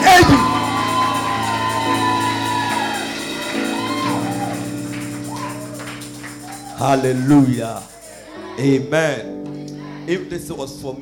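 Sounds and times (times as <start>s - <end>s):
large crowd cheering and shouting in welcome: 0.0s - 8.9s, 9.7s - 10.2s
scattered clapping: 0.2s - 8.2s
speech: 6.8s - 7.9s, 8.6s - 9.4s, 10.1s - 11.0s.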